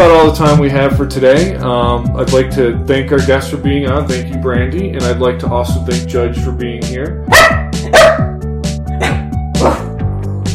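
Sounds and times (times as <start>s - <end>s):
speech: 0.2s - 7.7s
dog barking: 7.3s - 8.4s, 9.0s - 9.9s.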